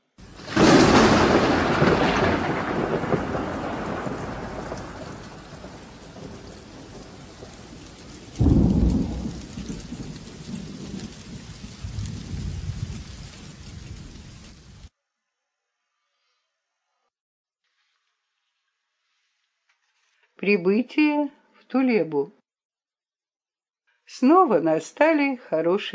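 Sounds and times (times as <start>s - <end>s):
heavy rain: 0.2s - 14.9s
thunder rumbling: 0.2s - 14.9s
speech: 20.4s - 22.4s, 24.1s - 25.9s.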